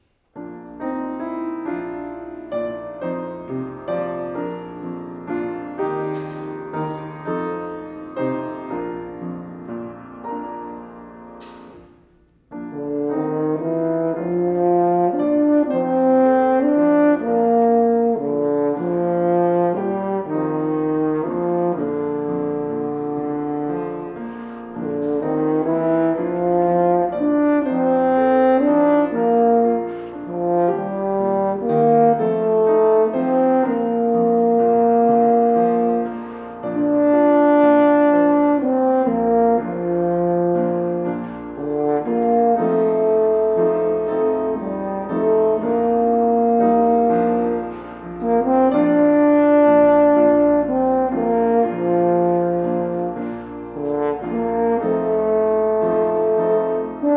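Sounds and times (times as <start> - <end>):
piano: 0.0 - 57.1
horn: 0.3 - 57.1.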